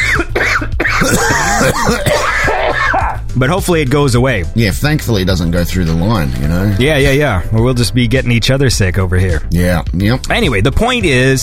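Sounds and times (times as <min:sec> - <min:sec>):
person clearing throat: 0:00.0 - 0:03.2
person coughing: 0:00.0 - 0:03.2
speech: 0:03.4 - 0:11.4.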